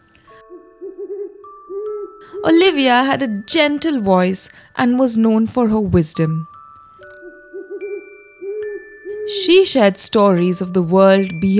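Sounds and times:
owl hooting softly and low: 0:00.3 - 0:03.0, 0:07.1 - 0:09.8
speech: 0:02.4 - 0:06.6, 0:09.3 - 0:11.5.

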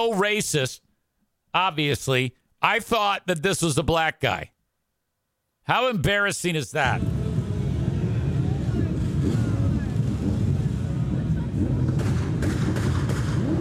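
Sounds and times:
speech: 0:00.0 - 0:00.9, 0:01.5 - 0:04.6, 0:05.6 - 0:07.2
heavy low rumble: 0:07.0 - 0:13.5
gunshots: 0:11.6 - 0:13.5.

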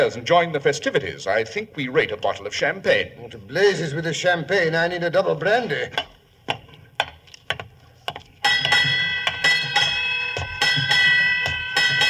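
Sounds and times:
speech: 0:00.0 - 0:06.6
ship's bell ringing: 0:08.4 - 0:12.0.

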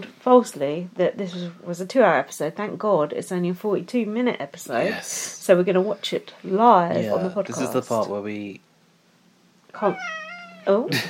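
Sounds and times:
speech: 0:00.0 - 0:08.7, 0:09.7 - 0:11.0
cat meowing: 0:09.8 - 0:10.9.

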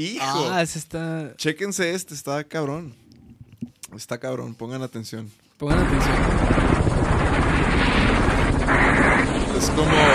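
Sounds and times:
speech: 0:00.0 - 0:03.0, 0:03.9 - 0:06.6, 0:09.6 - 0:10.1
helicopter rotor thumping during a hunt: 0:05.7 - 0:10.1
rapid gunfire during a hunt: 0:05.7 - 0:10.1.

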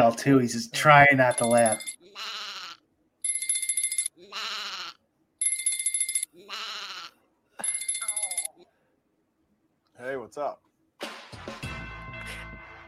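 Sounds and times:
speech: 0:00.1 - 0:02.4, 0:10.0 - 0:10.7
electronic phone ringtone: 0:01.2 - 0:02.0, 0:03.2 - 0:04.2, 0:05.4 - 0:06.4, 0:07.6 - 0:08.6
sheep-like bleating: 0:02.0 - 0:02.8, 0:04.2 - 0:05.0, 0:06.4 - 0:07.2.

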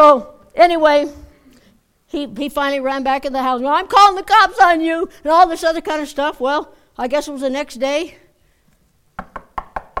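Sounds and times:
speech: 0:00.0 - 0:01.2, 0:02.1 - 0:08.2
firm knocking on a door: 0:09.2 - 0:09.9.

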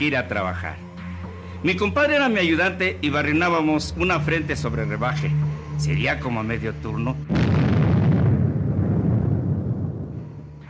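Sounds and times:
speech: 0:00.0 - 0:00.9, 0:01.6 - 0:07.5
deep heavy explosion in a mine: 0:07.3 - 0:10.4.

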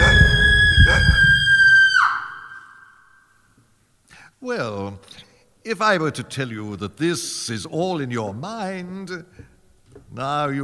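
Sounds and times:
low rumbling backdrop: 0:00.0 - 0:02.0
piercing high-pitched scream: 0:00.0 - 0:03.3
speech: 0:04.4 - 0:09.5, 0:10.1 - 0:10.6.

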